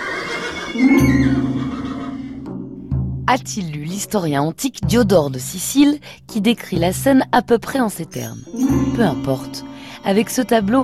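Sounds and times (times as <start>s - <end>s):
horses whinnying in terror: 0.0s - 2.5s
speech: 0.7s - 1.6s, 3.3s - 10.8s.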